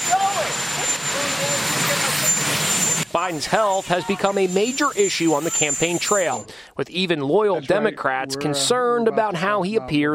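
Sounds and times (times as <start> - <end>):
helicopter engine roaring on the White House lawn: 0.0 - 6.4
high helicopter turbine whine: 0.0 - 6.5
speech: 3.1 - 10.1.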